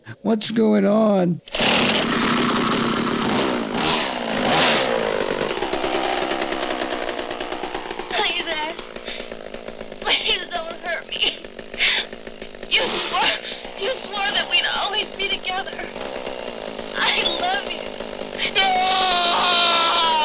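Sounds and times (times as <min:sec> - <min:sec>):
speech: 0:00.2 - 0:01.6
chainsaw engine running: 0:01.0 - 0:20.2
shrill cries and vocal sounds: 0:08.0 - 0:20.2.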